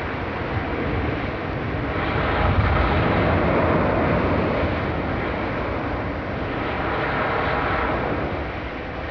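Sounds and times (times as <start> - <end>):
heavy surf: 0.0 - 9.0.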